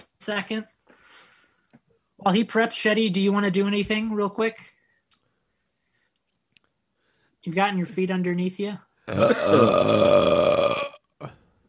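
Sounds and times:
speech: 0.2s - 0.8s, 2.2s - 4.8s, 7.4s - 10.6s
long loud rumbling burp: 9.1s - 11.4s.

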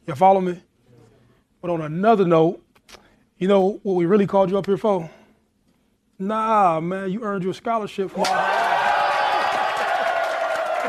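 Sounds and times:
speech: 0.1s - 0.7s, 1.6s - 5.2s, 6.2s - 8.6s
roomful of people cheering and shouting: 8.1s - 10.8s
scattered clapping: 8.2s - 10.8s.

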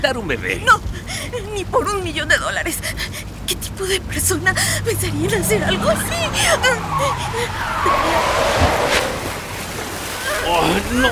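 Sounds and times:
speech: 0.0s - 9.1s, 10.5s - 11.0s
rushing water of a flooded river: 4.5s - 11.0s.

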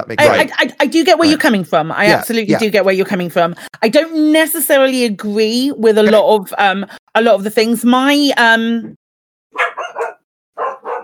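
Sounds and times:
speech: 0.0s - 9.0s
dog barking at the door: 9.5s - 11.0s.

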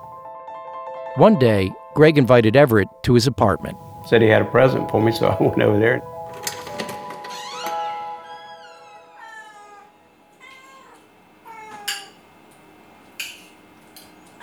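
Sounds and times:
speech: 1.2s - 6.1s
cats meowing in a small apartment: 7.3s - 14.4s.

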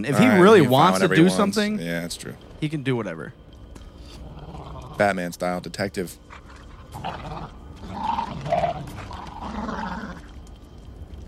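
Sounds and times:
speech: 0.0s - 3.4s, 5.0s - 6.2s, 7.0s - 7.6s
coyotes fighting with snarls and throaty growls: 4.0s - 5.3s, 6.1s - 10.6s.

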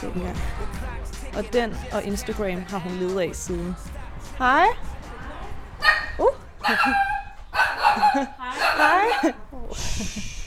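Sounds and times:
speech: 0.0s - 5.0s, 6.2s - 7.1s, 8.0s - 10.3s
dog barking and yipping in high-pitched bursts: 5.8s - 9.4s
laughter: 6.6s - 10.4s.

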